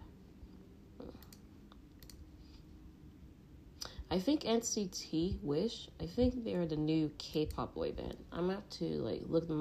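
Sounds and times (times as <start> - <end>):
low steady hum: 0.0 - 9.5
computer mouse clicking on videos: 1.1 - 2.2
speech: 4.1 - 9.5.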